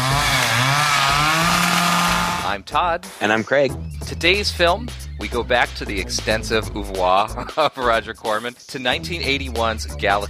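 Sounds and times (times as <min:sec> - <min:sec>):
chainsaw engine revving: 0:00.0 - 0:02.5
speech: 0:02.6 - 0:10.2
laughter: 0:06.3 - 0:08.3.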